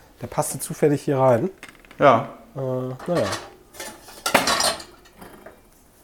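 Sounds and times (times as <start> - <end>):
speech: 0.2 - 3.5
dishes and a pan clattering while unloading a dishwasher: 1.6 - 5.8.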